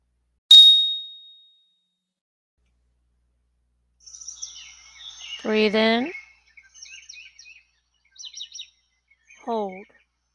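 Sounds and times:
meditation bell ringing: 0:00.5 - 0:01.3
soft bird chirps: 0:04.0 - 0:10.3
speech: 0:05.4 - 0:06.2.

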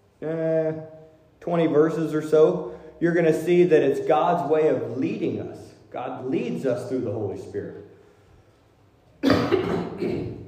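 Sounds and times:
speech: 0:00.2 - 0:00.9, 0:01.5 - 0:07.8, 0:09.4 - 0:10.3
loud raspy cough with throat clearing: 0:09.2 - 0:10.4.

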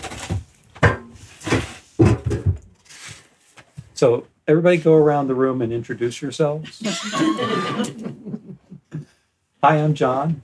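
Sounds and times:
wooden chair being brought over and set down: 0:00.0 - 0:02.8
speech: 0:04.0 - 0:08.4, 0:09.6 - 0:10.4
laughter: 0:06.6 - 0:09.1.

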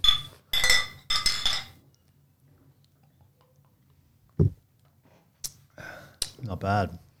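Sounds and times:
glasses of amber beer clinking in a toast: 0:00.0 - 0:01.8
speech: 0:06.5 - 0:07.0.

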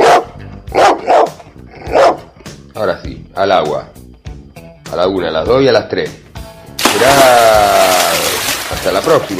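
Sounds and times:
dog barking: 0:00.0 - 0:02.3
speech: 0:02.8 - 0:03.9, 0:04.9 - 0:06.2, 0:07.0 - 0:07.6, 0:08.8 - 0:09.3.

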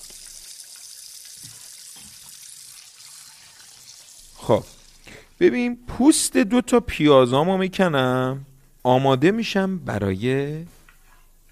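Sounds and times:
running water pouring into an electric kettle: 0:00.0 - 0:05.4
speech: 0:04.5 - 0:04.8, 0:05.4 - 0:10.8.

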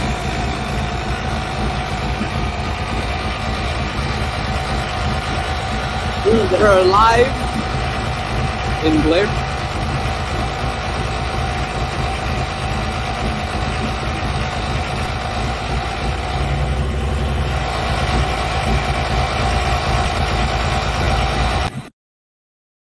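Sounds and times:
tractor engine rumbling at a tractor pull: 0:00.0 - 0:21.9
speech: 0:06.3 - 0:07.4, 0:08.8 - 0:09.5.

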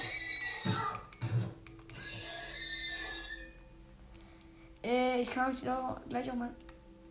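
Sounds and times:
video game horse neighing: 0:00.0 - 0:01.1, 0:01.9 - 0:03.6
speech: 0:04.9 - 0:06.6.

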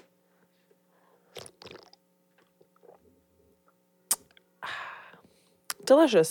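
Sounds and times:
person sipping a drink: 0:01.2 - 0:03.1
small wet mouth clicks: 0:01.4 - 0:03.0, 0:04.1 - 0:04.4.

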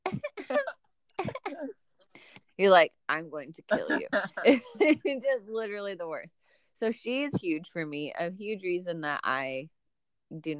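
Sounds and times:
voice mimicking a woman's small throat-clearing cough: 0:00.0 - 0:01.7
speech: 0:02.6 - 0:10.5.

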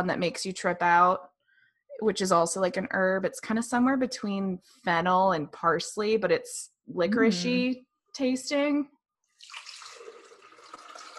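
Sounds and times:
speech: 0:00.0 - 0:01.3, 0:02.0 - 0:09.6
pineapple juice being poured: 0:09.3 - 0:11.1.

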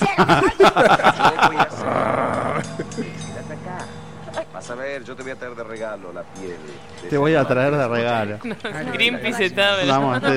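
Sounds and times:
laughter: 0:00.0 - 0:03.7, 0:07.2 - 0:10.3
speech: 0:00.2 - 0:02.2, 0:04.8 - 0:10.3
low rumble: 0:00.6 - 0:08.7
tiger snarling and growling: 0:01.7 - 0:03.1.

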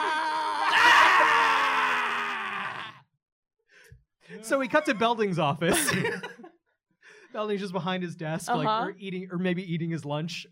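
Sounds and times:
two people screaming in a long loud wail: 0:00.0 - 0:03.1
speech: 0:04.3 - 0:06.4, 0:07.3 - 0:10.5
laughter: 0:04.5 - 0:06.6.

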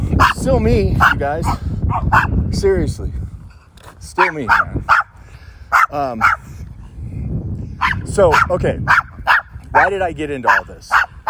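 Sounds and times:
dogs barking: 0:00.2 - 0:02.4, 0:04.2 - 0:06.5, 0:07.8 - 0:11.2
speech: 0:00.4 - 0:03.2, 0:04.0 - 0:05.0, 0:05.9 - 0:06.5, 0:08.1 - 0:09.0, 0:09.7 - 0:11.0.

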